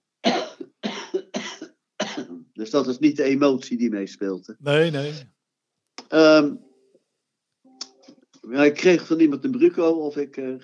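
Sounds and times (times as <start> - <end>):
harsh coughs with a brief rasp: 0.2 - 2.4
speech: 2.6 - 5.4, 6.1 - 6.7, 8.5 - 10.6.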